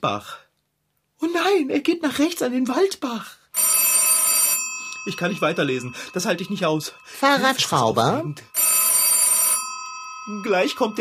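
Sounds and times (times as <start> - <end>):
speech: 0.0 - 0.4, 1.2 - 3.4, 5.0 - 8.5, 10.3 - 10.9
telephone bell ringing: 3.6 - 10.9.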